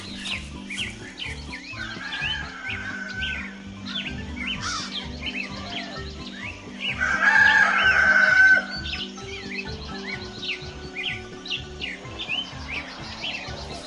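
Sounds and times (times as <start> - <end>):
birds chirping: 0.0 - 13.8
rooster crowing: 1.7 - 3.6, 7.0 - 8.7.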